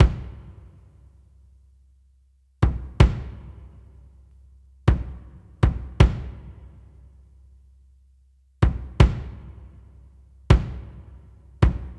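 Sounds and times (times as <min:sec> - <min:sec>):
80 kick drum: 0:00.0 - 0:00.6, 0:02.6 - 0:03.6, 0:04.8 - 0:06.6, 0:08.6 - 0:09.8, 0:10.5 - 0:11.9.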